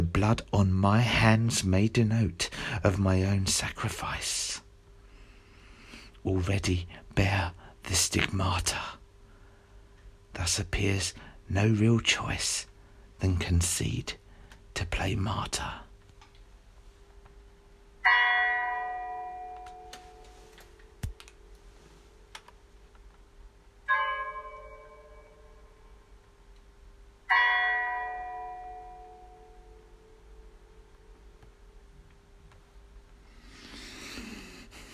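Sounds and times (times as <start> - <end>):
speech: 0.2 - 4.6, 6.2 - 9.0, 10.4 - 14.2, 14.8 - 15.8
church bell tolling a death knell: 18.0 - 20.3, 23.9 - 25.9, 27.3 - 29.9.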